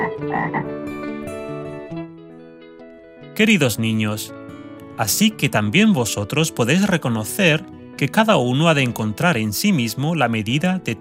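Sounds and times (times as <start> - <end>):
frog croaking: 0.0 - 0.8
speech: 0.2 - 1.1, 3.4 - 4.4, 5.0 - 10.9.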